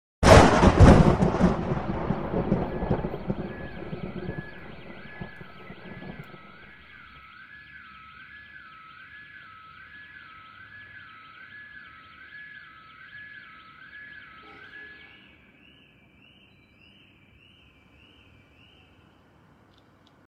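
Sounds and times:
thunder: 0.2 - 6.9
alarm: 0.6 - 19.2.

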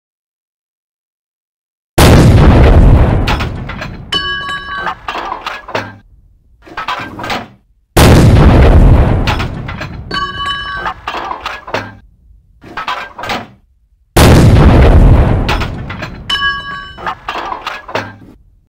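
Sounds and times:
artillery fire: 2.0 - 4.2, 8.0 - 10.1, 14.2 - 16.4.

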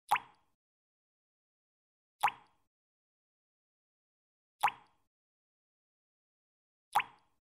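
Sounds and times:
water dripping: 0.1 - 0.5, 2.2 - 2.6, 4.6 - 5.0, 6.9 - 7.3.

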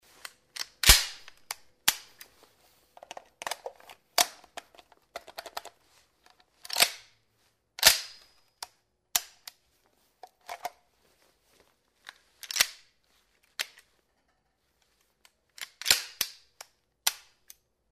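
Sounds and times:
pistol being prepared for shooting: 0.2 - 7.2, 10.2 - 10.8, 12.0 - 14.3, 15.1 - 17.7.

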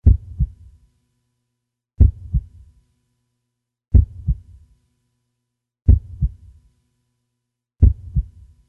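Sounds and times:
heart stopping: 0.0 - 0.6, 2.0 - 2.5, 3.9 - 4.4, 5.9 - 6.4, 7.8 - 8.3.

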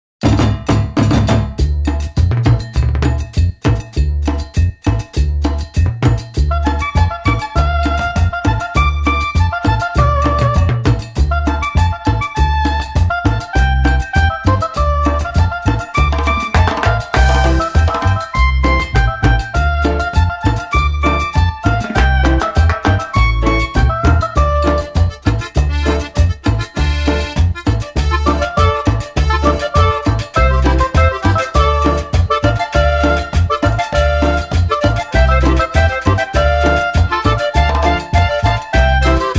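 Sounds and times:
cheerful music: 0.2 - 39.3.

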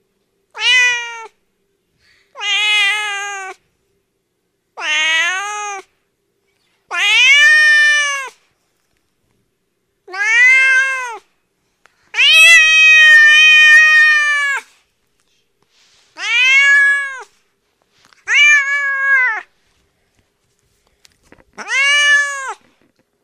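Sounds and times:
cat meowing: 0.6 - 1.4, 2.4 - 3.6, 4.8 - 5.9, 6.9 - 8.4, 10.1 - 11.2, 12.1 - 14.7, 16.2 - 17.3, 18.2 - 19.5, 21.6 - 22.7.

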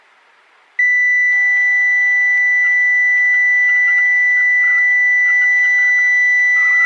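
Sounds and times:
cardiac monitor: 0.8 - 6.8.

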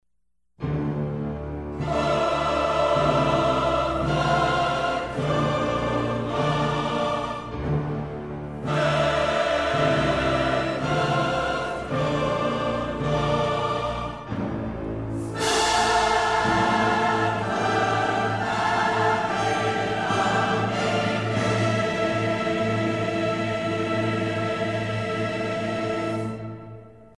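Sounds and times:
music: 0.6 - 27.1
choir singing: 0.7 - 27.1.

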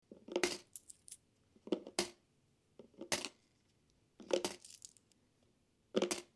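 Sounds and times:
coins in a full piggy bank: 0.3 - 2.2, 3.0 - 3.4, 4.2 - 5.2, 6.0 - 6.3.

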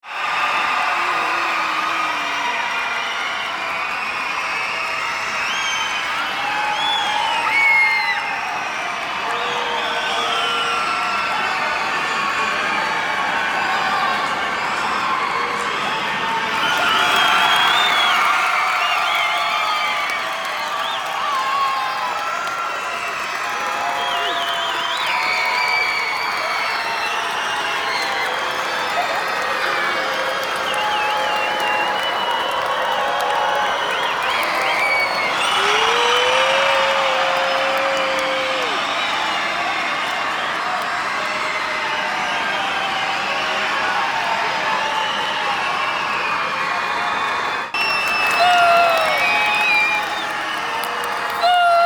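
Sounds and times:
loud indignant crowd screaming: 0.0 - 51.8.

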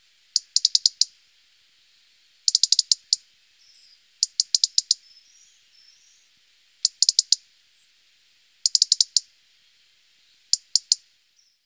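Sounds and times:
European robin singing: 0.4 - 1.2, 2.5 - 8.0, 8.6 - 9.3, 10.2 - 11.6.

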